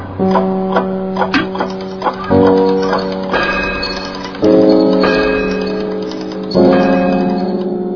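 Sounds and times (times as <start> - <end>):
alarm clock ringing in a school caretakers' room: 0.2 - 7.8.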